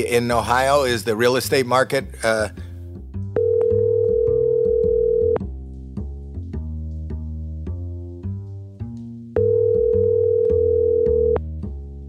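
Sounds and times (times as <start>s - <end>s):
speech: 0.0s - 2.6s
soft music: 0.0s - 12.0s
outgoing phone call ringback tones: 3.4s - 5.4s, 9.4s - 11.4s.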